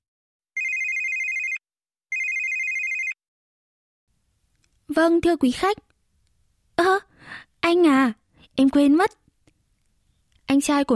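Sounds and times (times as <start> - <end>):
telephone ringing with a steady electronic trill: 0.6 - 3.2
speech: 4.9 - 5.9, 6.8 - 9.2, 10.5 - 10.9.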